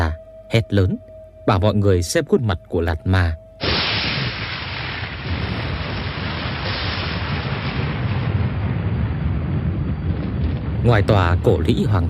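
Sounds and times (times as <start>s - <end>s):
speech: 0.5s - 3.4s, 10.8s - 12.0s
deep rumbling thunder outside an old ruined fortress after rain: 3.6s - 12.0s.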